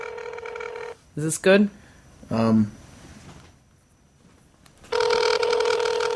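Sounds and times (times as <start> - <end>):
loud buzzy telephone ring through a speakerphone: 0.0 - 1.0, 4.9 - 6.1
short electronic phone tone: 0.0 - 1.0, 4.9 - 6.1
speech: 1.2 - 2.8.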